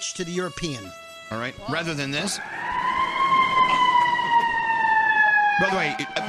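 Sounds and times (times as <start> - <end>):
speech: 0.0 - 2.8, 5.6 - 6.2
emergency vehicle siren with steady electronic tone: 1.8 - 6.2.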